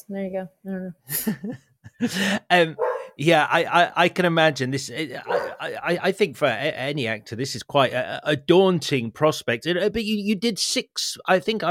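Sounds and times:
speech: 0.0 - 11.7
laughter: 1.1 - 2.7
dog barking wildly at the doorbell: 2.8 - 3.2, 5.2 - 5.7.

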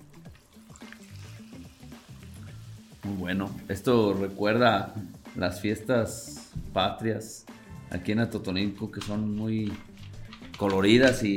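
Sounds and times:
mineral water poured into a glass: 0.0 - 4.4
speech: 3.1 - 9.9, 10.6 - 11.3.

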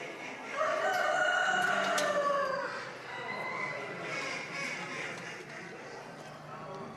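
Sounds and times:
crowd noise at a poultry show: 0.0 - 6.9
caged rooster crowing at a poultry show: 0.5 - 3.9.

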